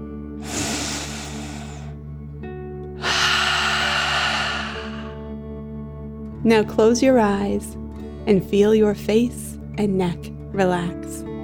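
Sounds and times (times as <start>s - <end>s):
soft music: 0.0s - 11.4s
deep breath in and out during a children's relaxation exercise: 0.4s - 2.1s, 3.0s - 5.4s
speech: 6.4s - 11.2s.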